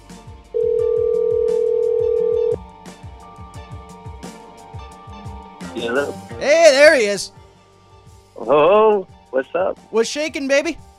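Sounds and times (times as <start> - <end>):
rhythmic music: 0.0 - 10.9
phone ringback tone: 0.6 - 2.6
speech: 5.8 - 7.4, 8.4 - 10.9.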